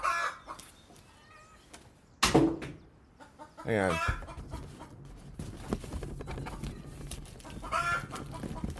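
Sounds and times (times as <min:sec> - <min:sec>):
chicken clucking and squawking: 0:00.0 - 0:00.8, 0:03.1 - 0:05.0, 0:06.2 - 0:08.7
speech: 0:03.7 - 0:04.2.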